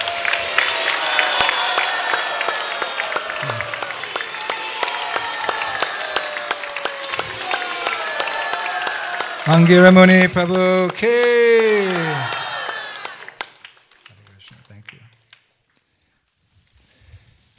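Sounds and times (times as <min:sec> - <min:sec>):
cheers and whoops: 0:00.0 - 0:09.8, 0:11.0 - 0:13.5
audience applauding in a standing ovation: 0:00.0 - 0:15.6
speech: 0:09.5 - 0:12.4.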